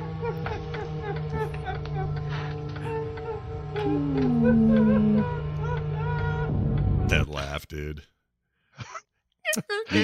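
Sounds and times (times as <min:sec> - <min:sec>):
laughter: 0:00.0 - 0:06.4
person making dog-like whimpering moans: 0:02.8 - 0:05.8
speech: 0:07.6 - 0:08.2, 0:09.6 - 0:10.0.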